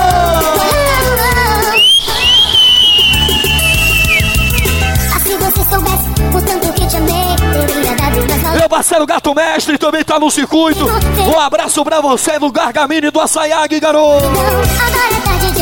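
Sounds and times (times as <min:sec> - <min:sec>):
loud live party music at a crab festival: 0:00.0 - 0:08.7, 0:10.8 - 0:11.4, 0:14.1 - 0:15.6
whistle blown: 0:01.6 - 0:05.1
speech: 0:08.8 - 0:15.6.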